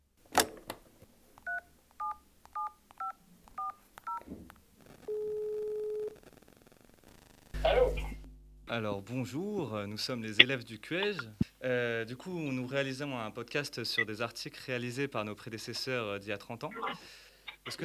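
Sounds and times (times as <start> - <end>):
phone handset click: 0.3 - 1.6
touch-tone dialing beeps: 1.5 - 4.2, 5.1 - 6.2
single longer steady telephone tone: 5.1 - 6.3, 7.6 - 8.7
speech: 8.7 - 17.8.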